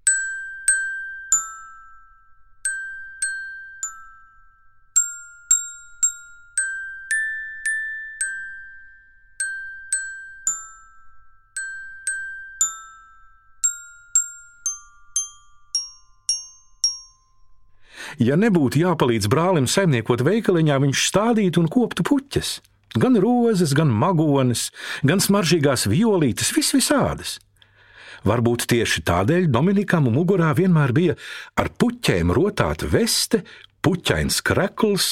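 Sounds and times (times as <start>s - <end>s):
small bells tinkling in a gentle melody: 0.0s - 18.0s
speech: 18.1s - 27.5s, 28.2s - 35.0s.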